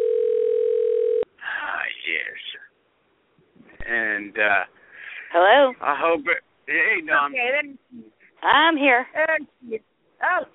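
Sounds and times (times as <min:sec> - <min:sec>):
steady loud telephone line tone: 0:00.0 - 0:01.2
faint hiss of telephone line noise: 0:01.2 - 0:10.5
speech: 0:04.2 - 0:10.5.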